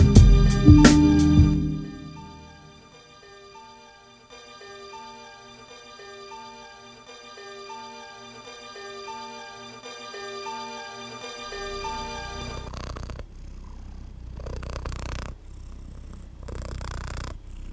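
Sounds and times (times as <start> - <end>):
melodic tune: 0.5 - 2.6
cat purring: 0.6 - 2.5, 11.5 - 17.7.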